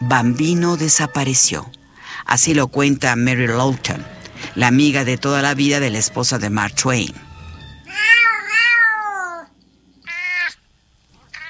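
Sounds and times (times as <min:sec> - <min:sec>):
speech: 0:00.0 - 0:07.3
cats meowing and yowling: 0:07.8 - 0:10.6.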